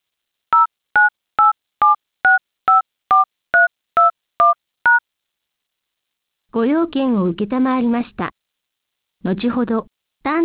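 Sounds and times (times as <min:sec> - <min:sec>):
DTMF touch-tone keypad beeps entering a phone number: 0:00.6 - 0:05.0
speech: 0:06.6 - 0:08.4, 0:09.2 - 0:10.4.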